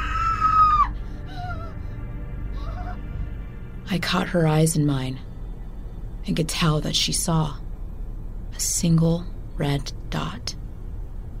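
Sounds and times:
woman screaming: 0.0s - 1.7s
wavering cries: 0.0s - 3.3s
low rumble: 0.0s - 11.3s
speech: 3.9s - 5.3s, 6.3s - 7.6s, 8.6s - 10.6s.

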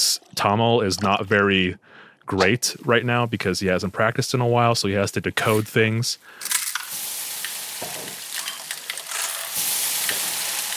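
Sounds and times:
speech: 0.0s - 6.5s
onions, ginger, garlic and tomatoes sizzling in a hot pan: 6.8s - 10.7s.

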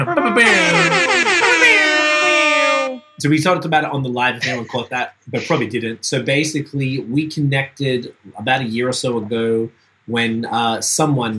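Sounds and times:
air horn sound effect blasts: 0.0s - 3.2s
laughter: 0.3s - 1.8s, 4.3s - 6.0s
speech: 0.4s - 0.8s, 3.2s - 11.3s.

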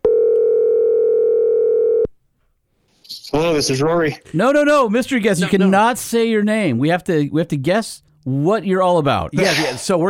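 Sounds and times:
steady unbroken telephone dial tone: 0.0s - 2.1s
speech: 3.4s - 10.0s.

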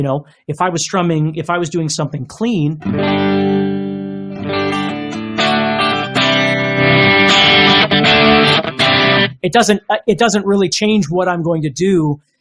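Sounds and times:
speech: 0.0s - 4.9s, 9.4s - 12.3s
heavily distorted electric guitar strumming power chords: 2.8s - 9.4s.

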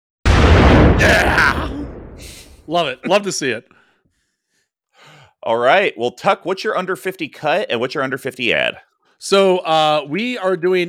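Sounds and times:
explosion sound effect with a heavy rumbling low end: 0.2s - 2.7s
speech: 1.0s - 1.7s, 2.7s - 3.8s, 5.4s - 10.8s.

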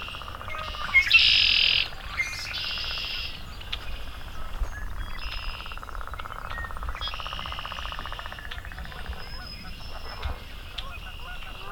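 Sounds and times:
buzzy trilling swamp sparrow songs: 0.0s - 11.7s
swamp sparrows giving ticking call notes: 0.0s - 11.7s.

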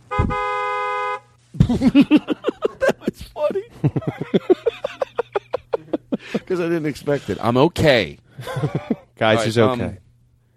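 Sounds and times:
car horn blast: 0.0s - 1.4s
laughter: 1.6s - 7.4s, 8.4s - 9.2s
speech: 1.7s - 2.4s, 3.2s - 4.5s, 6.5s - 10.0s.

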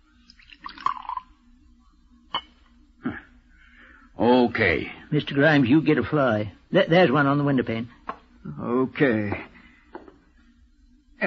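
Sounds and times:
poison poured into a tumbler: 0.2s - 1.4s
speech: 4.6s - 9.5s.

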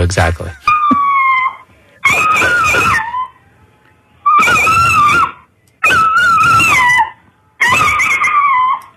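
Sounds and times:
speech: 0.0s - 0.7s
Italian Greyhound screaming barks: 0.7s - 3.3s, 4.3s - 8.9s.

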